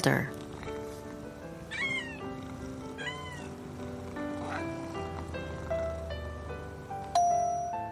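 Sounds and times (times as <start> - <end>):
speech: 0.0 - 0.4
soft sustained musical background: 0.0 - 7.8
cat meowing: 1.7 - 3.6.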